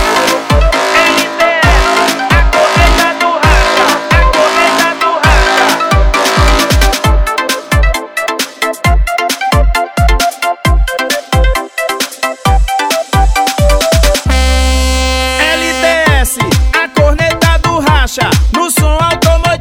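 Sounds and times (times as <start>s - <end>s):
loud music from a car audio horn speaker: 0.0s - 19.6s
punchy steady bass thumps: 1.6s - 4.6s, 5.2s - 8.0s, 14.0s - 19.6s.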